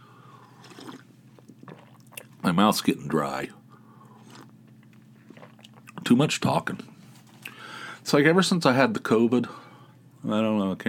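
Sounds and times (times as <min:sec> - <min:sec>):
person sipping coffee: 0:00.3 - 0:02.4, 0:04.0 - 0:06.0
speech: 0:02.5 - 0:03.6, 0:06.1 - 0:06.9, 0:08.1 - 0:09.6, 0:10.2 - 0:10.8.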